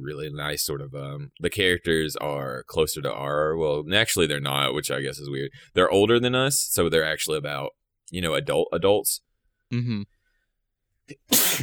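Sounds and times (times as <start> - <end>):
speech: 0.0 - 10.2, 11.1 - 11.6
person sneezing: 11.1 - 11.6.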